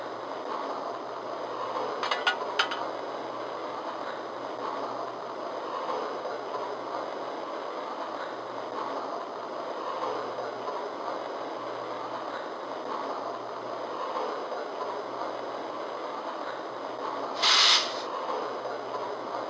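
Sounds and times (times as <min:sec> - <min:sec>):
passenger train idling at a station platform: 0:00.0 - 0:19.4
short sharp hiss of air: 0:17.4 - 0:18.1.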